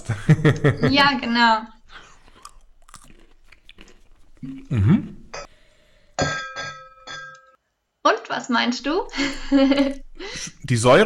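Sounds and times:
laughter: 0.0s - 1.4s
speech: 0.1s - 1.8s, 4.4s - 5.2s, 8.3s - 11.0s
nut seasoned with lemon powder and lemon myrtle cracking and crunching as bitten and chewed: 1.8s - 5.3s.

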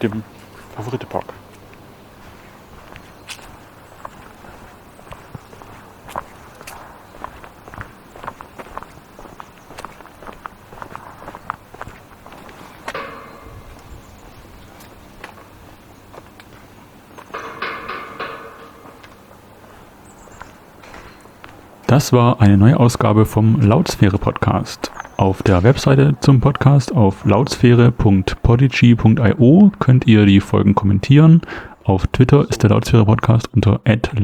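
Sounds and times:
speech: 0.0s - 1.4s, 21.9s - 34.2s
footsteps walking through a park toward a turnstile: 0.2s - 30.6s.

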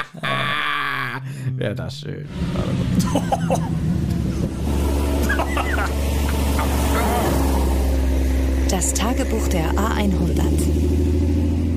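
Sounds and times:
laughter: 0.0s - 1.5s, 3.0s - 3.8s, 5.2s - 7.7s
speech: 1.6s - 4.9s, 8.7s - 11.0s
car engine roaring: 2.1s - 11.7s
short cough-like vocal bursts: 6.6s - 7.6s.

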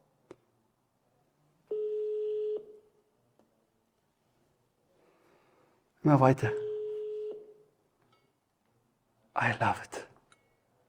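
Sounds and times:
steady telephone tone while placing a call: 1.7s - 2.8s, 6.6s - 7.6s
speech: 6.0s - 6.6s, 9.4s - 10.0s.

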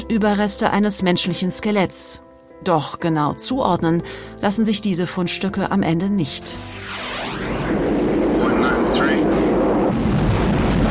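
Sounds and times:
speech: 0.1s - 8.0s
Bell X-1 supersonic aircraft roar: 6.6s - 9.8s.

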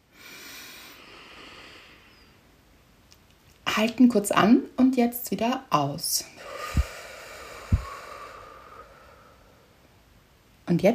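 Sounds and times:
deep inhale through the nose in a guided breathing exercise: 0.1s - 2.4s, 6.4s - 9.8s
speech: 3.8s - 6.4s, 10.7s - 10.9s.

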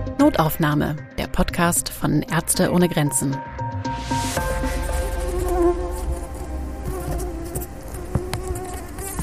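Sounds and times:
speech: 0.2s - 4.4s
tiger mosquito buzzing: 4.4s - 9.2s.

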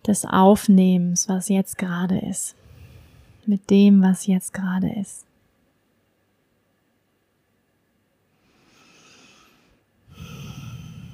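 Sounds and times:
speech: 0.1s - 2.6s, 3.4s - 5.3s
slow deep breathing in and out during a calm relaxation exercise: 2.6s - 3.5s, 8.3s - 11.1s.

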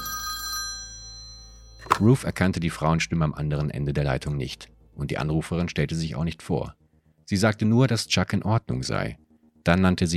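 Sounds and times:
telephone bell ringing: 0.0s - 2.0s
speech: 1.9s - 10.1s.

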